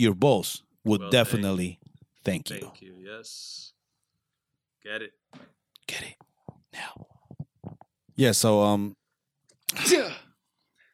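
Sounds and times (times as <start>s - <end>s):
speech: 0.0s - 3.8s, 4.8s - 7.1s, 8.2s - 9.0s, 9.7s - 10.2s
person sneezing: 9.7s - 10.4s.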